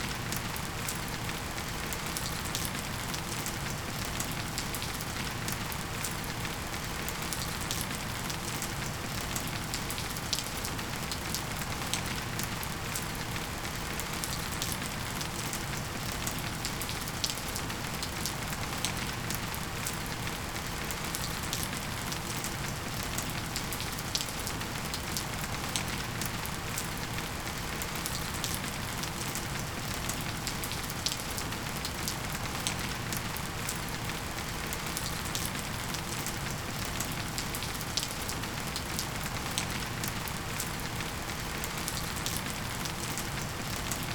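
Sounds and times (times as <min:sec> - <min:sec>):
rain: 0:00.0 - 0:44.1.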